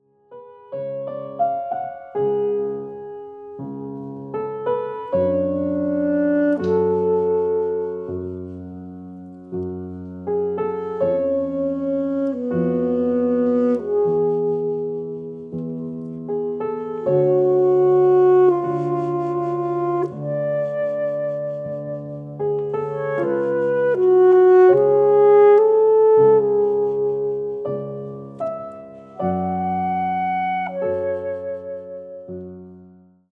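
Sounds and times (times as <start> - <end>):
saxophone music: 4.8 - 8.7, 10.3 - 32.6.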